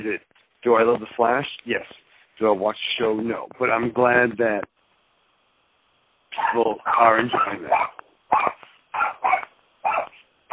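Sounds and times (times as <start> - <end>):
speech: 0.0 - 4.7, 6.4 - 8.6
dog barking sharply: 6.4 - 10.5.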